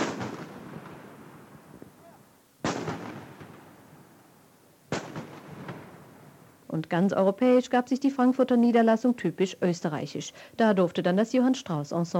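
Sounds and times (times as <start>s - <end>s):
ceremonial salute shots fired outside a bank branch: 0.0s - 3.9s, 4.9s - 6.1s
speech: 6.8s - 12.1s.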